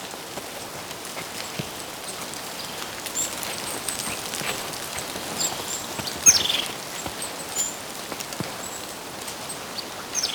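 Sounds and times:
soft pattering: 0.2 - 9.8
birds chirping and calling in a forest: 1.7 - 7.9, 8.6 - 10.3.

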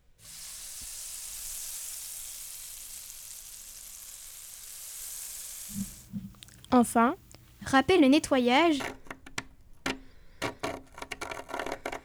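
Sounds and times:
omelette frying in a pan: 0.0 - 6.7
speech: 6.7 - 9.0.

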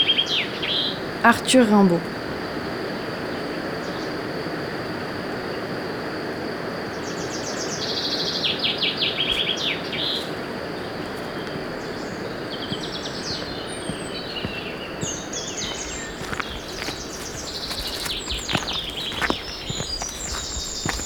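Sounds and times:
steady rushing hiss: 0.0 - 21.0
speech: 1.2 - 2.1
bird singing high rapid chirping notes: 7.0 - 21.0.

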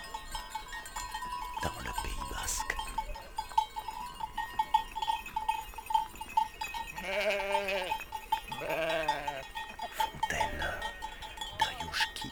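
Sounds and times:
bells on a flock of ewes clinking at the Ayushki fountain in the Basque Country: 0.0 - 12.3
ewes bleating: 7.0 - 12.3.

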